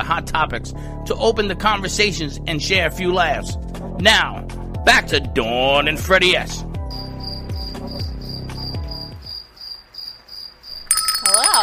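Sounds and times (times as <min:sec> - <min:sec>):
speech: 0:00.0 - 0:06.7
crickets chirping: 0:06.9 - 0:11.6.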